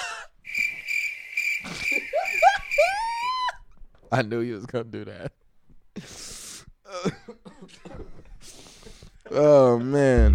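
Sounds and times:
high-pitched cricket chirping sound effect: 0.4 - 3.3
speech: 4.1 - 5.4, 9.3 - 10.3.

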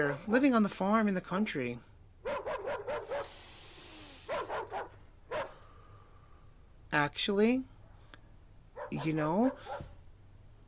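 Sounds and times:
speech: 0.0 - 2.4, 7.0 - 7.7, 8.9 - 9.9
dog barking: 2.2 - 3.4, 4.3 - 5.7, 8.8 - 10.0.

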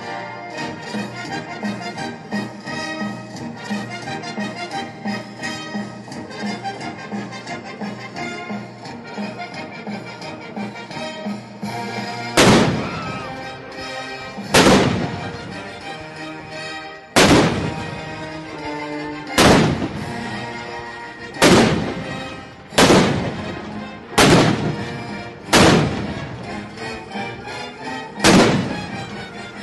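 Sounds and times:
full orchestra playing an overture: 0.0 - 29.6
howitzer cannons firing: 12.4 - 13.2, 14.5 - 15.5, 17.2 - 18.1, 19.4 - 20.3, 21.3 - 26.5, 28.2 - 29.1.

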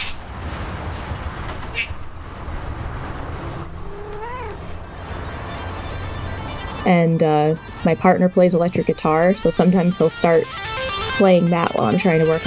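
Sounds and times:
cat meowing: 3.6 - 4.8
speech: 6.8 - 12.4.

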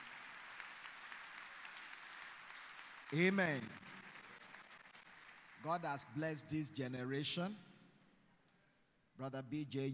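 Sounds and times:
large church audience clapping: 0.0 - 6.6
speech: 3.1 - 4.0, 5.6 - 7.7, 9.2 - 9.9.

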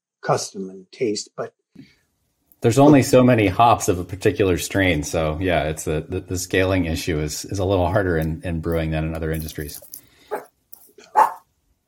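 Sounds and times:
speech: 0.3 - 2.0, 2.6 - 10.0
dog barking: 10.3 - 11.5.

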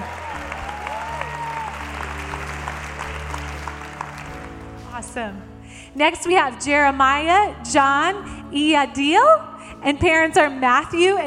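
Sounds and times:
audience clapping: 0.0 - 4.9
speech: 5.1 - 11.2.

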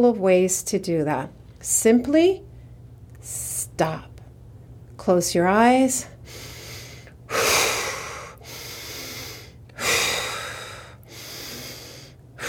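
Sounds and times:
speech: 0.0 - 2.5, 3.2 - 4.1, 5.0 - 6.5
deep breathing as an anger-calming exercise: 6.2 - 12.4.

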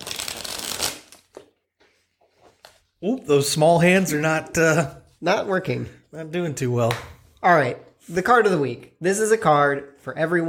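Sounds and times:
deck of cards riffle-shuffled: 0.0 - 1.4
speech: 3.0 - 10.4.

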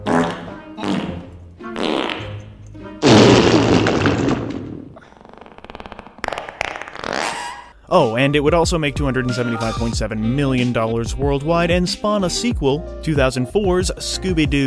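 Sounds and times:
buzzy sputtering farts: 0.0 - 2.4, 3.0 - 7.7
speech: 7.9 - 14.6.

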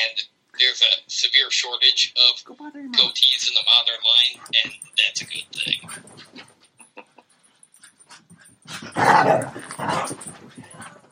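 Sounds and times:
speech: 0.1 - 6.2, 8.8 - 10.4
female blue heeler puppy snarling barks: 8.7 - 10.2
female blue heeler puppy yapping and growling at night: 8.7 - 10.2.

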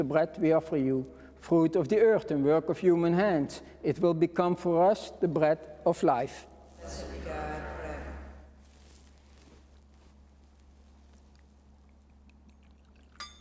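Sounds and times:
speech: 0.0 - 7.1
water poured into wine in a chalice: 12.4 - 13.3
faint clink: 13.1 - 13.3.

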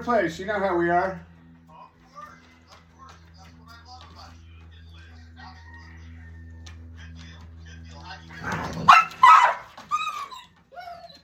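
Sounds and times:
speech: 0.0 - 1.3
dogs barking: 8.4 - 11.2.

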